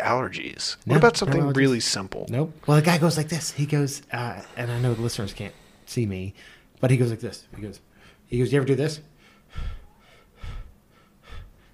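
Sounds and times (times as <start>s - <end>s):
speech: 0.0s - 9.8s
person imitating heavy breathing: 4.2s - 6.6s.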